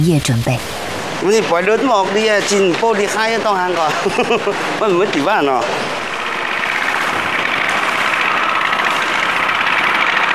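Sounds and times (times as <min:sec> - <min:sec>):
speech: 0:00.0 - 0:06.0
laughter: 0:03.7 - 0:05.2
small motorcycle engine arriving at a market: 0:05.4 - 0:10.3.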